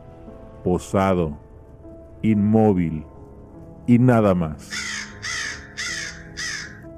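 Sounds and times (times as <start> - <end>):
speech: 0.6 - 1.4, 2.2 - 3.1, 3.9 - 4.8
raven cawing: 4.6 - 6.9.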